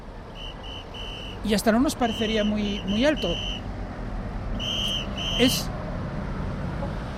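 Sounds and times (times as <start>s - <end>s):
traffic rumble: 0.0s - 7.1s
short high-pitched car horn beeps: 0.3s - 3.6s, 4.6s - 5.7s
speech: 1.4s - 3.6s, 5.4s - 5.8s.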